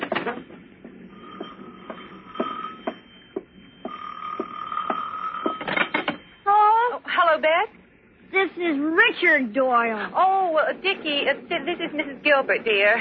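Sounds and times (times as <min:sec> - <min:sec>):
telephone ringing: 0:00.0 - 0:07.2
steady hum: 0:00.0 - 0:12.9
speech: 0:08.5 - 0:12.9.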